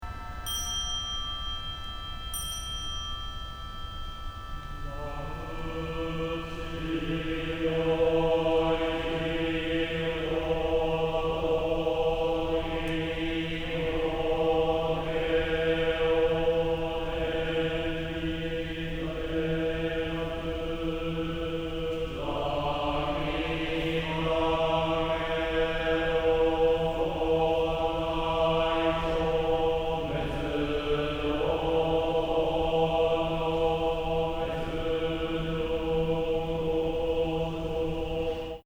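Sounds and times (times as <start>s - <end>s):
shomyo Buddhist chanting: 0.0s - 38.6s.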